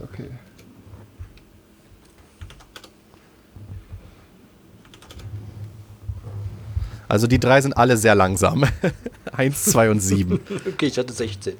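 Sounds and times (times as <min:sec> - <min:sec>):
typing a chat command on a computer keyboard: 0:01.4 - 0:03.0, 0:04.8 - 0:05.3
speech: 0:07.1 - 0:11.5
laughter: 0:08.2 - 0:11.5.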